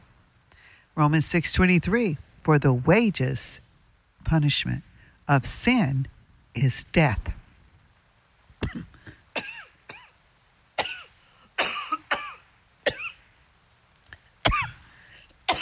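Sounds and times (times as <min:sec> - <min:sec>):
speech: 0:01.0 - 0:03.6, 0:04.2 - 0:07.4, 0:08.6 - 0:09.0
man coughing to clear something caught in his throat: 0:08.6 - 0:10.1, 0:10.8 - 0:13.2, 0:14.5 - 0:14.8.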